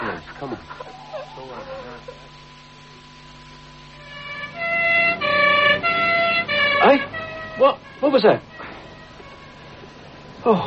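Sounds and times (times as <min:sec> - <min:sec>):
speech: 0:00.4 - 0:02.5, 0:06.9 - 0:08.5, 0:10.4 - 0:10.6
ambulance siren wailing: 0:04.0 - 0:09.9.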